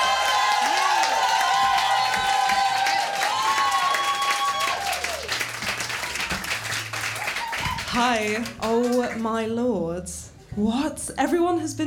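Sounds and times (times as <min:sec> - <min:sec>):
whoops and high-pitched shouts: 0:00.0 - 0:05.2
crowd cheering for the final act: 0:00.0 - 0:08.0
crowd applauding for the final act: 0:00.0 - 0:09.2
speech: 0:08.0 - 0:11.8.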